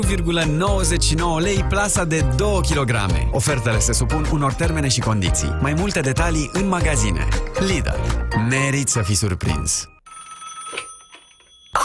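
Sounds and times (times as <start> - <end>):
speech: 0.0 - 10.0
telephone ringing with a bright electronic tone: 9.9 - 11.8.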